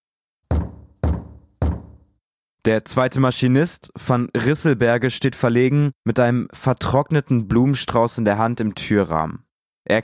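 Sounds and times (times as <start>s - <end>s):
firm knocking on a wooden door: 0.5s - 2.1s
speech: 2.6s - 10.0s.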